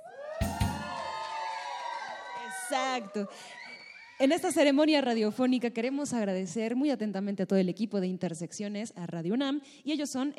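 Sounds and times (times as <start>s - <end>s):
live audience shouting and cheering: 0.0s - 4.5s
speech: 2.7s - 3.6s, 4.2s - 10.3s.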